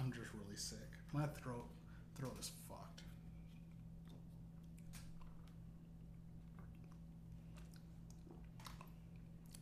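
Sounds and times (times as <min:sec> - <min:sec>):
steady low hum: 0:00.0 - 0:09.6
speech: 0:00.1 - 0:03.2
wet slurps and swallowing while sipping cough syrup: 0:06.4 - 0:09.6.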